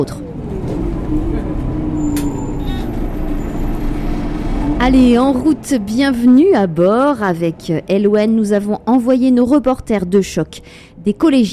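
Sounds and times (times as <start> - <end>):
speech: 0.0 - 0.4, 1.1 - 1.6, 4.8 - 11.5
bus engine rumbling: 0.0 - 11.5
thin high squeal: 1.8 - 4.8.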